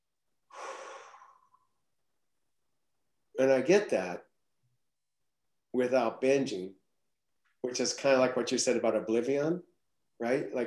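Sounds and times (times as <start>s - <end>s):
slow calming breath: 0.5s - 1.8s
speech: 3.4s - 4.3s, 5.8s - 6.8s, 7.6s - 10.6s.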